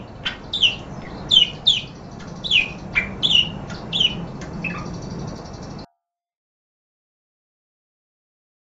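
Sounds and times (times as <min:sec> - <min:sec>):
parakeet squawks and chirps: 0:00.0 - 0:05.8.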